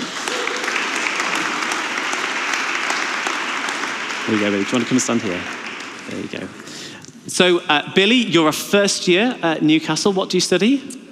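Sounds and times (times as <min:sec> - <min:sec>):
audience clapping: 0:00.0 - 0:06.9
speech: 0:04.3 - 0:11.0.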